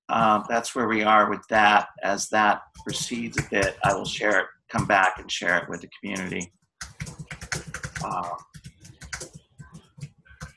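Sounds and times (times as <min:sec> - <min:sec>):
speech: 0:00.1 - 0:06.6, 0:08.0 - 0:08.5
typing on a keyboard: 0:02.8 - 0:05.3, 0:06.0 - 0:10.5.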